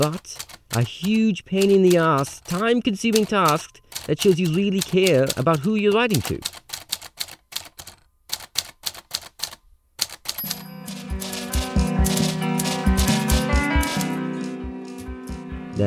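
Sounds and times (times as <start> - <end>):
speech: 0.0 - 6.6
typewriter keys clacking: 0.0 - 14.6
sustained musical backing: 10.4 - 15.8.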